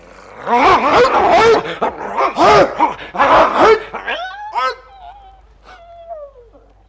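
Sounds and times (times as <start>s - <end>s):
dog yelping: 0.5s - 6.1s
dog whimpering: 4.0s - 6.7s.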